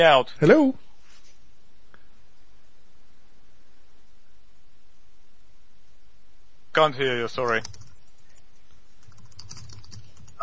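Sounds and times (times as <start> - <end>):
speech: 0.0 - 0.8, 6.8 - 7.8
low hiss: 0.0 - 10.4
someone typing fast and hard on a computer keyboard through a call line: 7.3 - 10.4.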